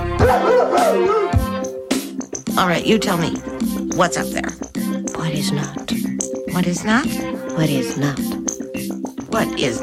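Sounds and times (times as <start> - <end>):
person imitating a dog barking: 0.2 - 1.5
speech: 2.6 - 6.0, 6.5 - 8.5, 9.3 - 9.8.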